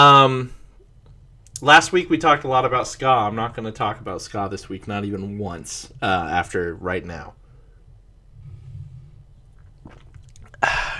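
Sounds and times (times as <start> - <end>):
speech: 0.0 - 0.6, 1.6 - 7.4
mouth clicks: 1.0 - 1.7, 8.5 - 10.9
loud breathy exhale at the microphone: 7.4 - 9.5, 10.6 - 10.9
person swallowing a sip of beer: 8.4 - 10.9.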